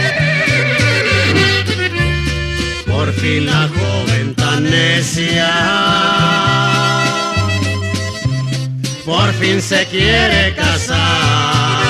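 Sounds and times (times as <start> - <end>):
horse neighing and snorting: 0.0 - 1.7
rhythmic band accompaniment with stepping bass notes: 0.0 - 11.8
speech: 9.2 - 11.5.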